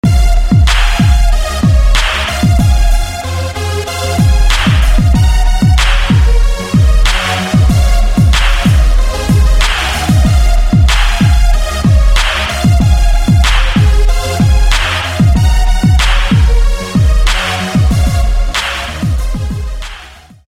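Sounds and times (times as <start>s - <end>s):
echoed lead melody: 0.0s - 20.4s.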